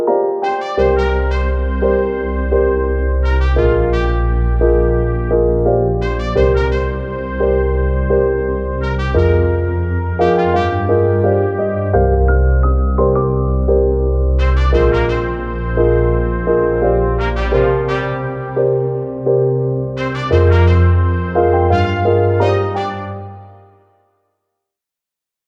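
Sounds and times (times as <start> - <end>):
brass melody: 0.1 - 23.9.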